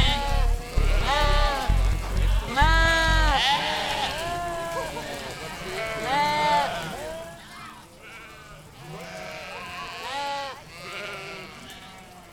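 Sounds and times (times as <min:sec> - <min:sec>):
low background rumble: 0:00.0 - 0:03.4
goats bleating with wavering nasal cries: 0:00.0 - 0:12.3.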